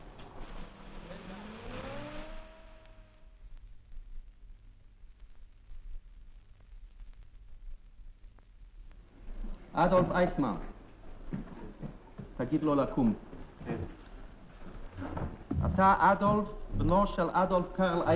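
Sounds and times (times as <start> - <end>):
heavy military vehicle engine revving: 0.0 - 3.2
hiss: 0.0 - 18.1
speech: 9.8 - 10.7, 12.4 - 13.3, 15.8 - 18.1.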